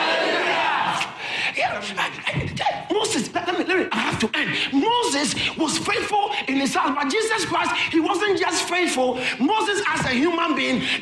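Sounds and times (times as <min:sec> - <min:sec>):
audience shouting hallelujah: 0:00.0 - 0:01.2
speech: 0:01.8 - 0:02.6, 0:03.7 - 0:10.9.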